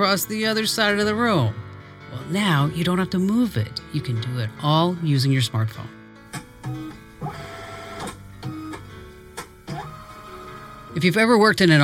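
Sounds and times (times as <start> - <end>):
speech: 0.0 - 6.0, 11.0 - 11.8
document scanner or copier motor whirring: 6.6 - 8.8, 9.6 - 11.0.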